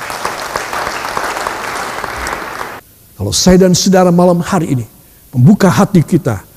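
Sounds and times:
congregation applauding: 0:00.0 - 0:02.8
speech: 0:03.2 - 0:06.5.

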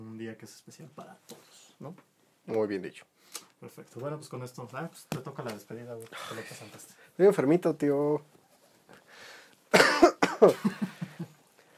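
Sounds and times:
speech: 0:00.2 - 0:08.4, 0:10.4 - 0:11.0
harsh barking rasping cough: 0:09.7 - 0:10.6.

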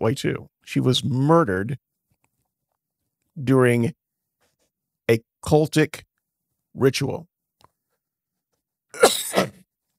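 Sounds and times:
speech: 0:00.0 - 0:01.9, 0:03.4 - 0:04.0, 0:05.1 - 0:06.1, 0:06.8 - 0:07.3
person coughing harshly: 0:09.0 - 0:09.6.

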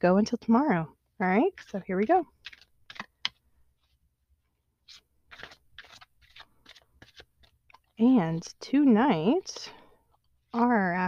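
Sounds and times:
speech: 0:00.0 - 0:02.6, 0:08.0 - 0:09.8, 0:10.5 - 0:11.0
deck of cards shuffling: 0:01.5 - 0:04.0, 0:04.8 - 0:10.8.

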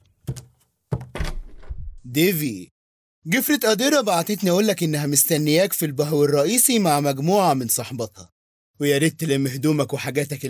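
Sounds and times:
wooden door latch and handle thunks: 0:00.3 - 0:02.0
speech: 0:02.0 - 0:10.4.

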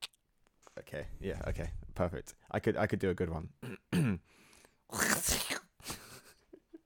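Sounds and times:
speech: 0:00.9 - 0:04.4
person sneezing: 0:04.9 - 0:05.8.

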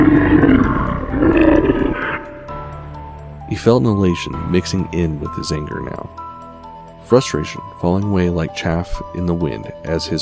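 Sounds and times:
deep guttural monster roar: 0:00.0 - 0:02.5
speech: 0:03.6 - 0:06.2, 0:07.1 - 0:10.2.

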